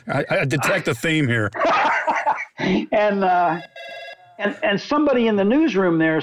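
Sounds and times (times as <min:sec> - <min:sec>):
laughter: 0:00.0 - 0:02.8
speech: 0:00.0 - 0:06.2
telephone ringing in a newspaper newsroom: 0:03.3 - 0:04.6.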